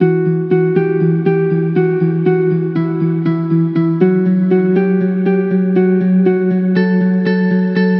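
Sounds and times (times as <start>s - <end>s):
musical loop at 120 in E minor: 0.0s - 7.9s.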